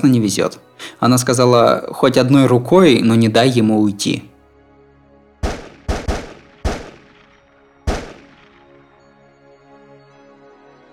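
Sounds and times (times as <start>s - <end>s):
speech: 0.0s - 4.3s
gunshots echoing through a deserted city: 5.4s - 8.8s.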